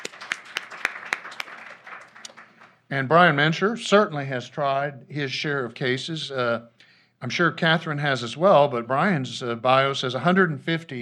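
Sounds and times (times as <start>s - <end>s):
audience applause at a legal professionals' event: 0.0s - 2.8s
speech: 2.9s - 11.0s.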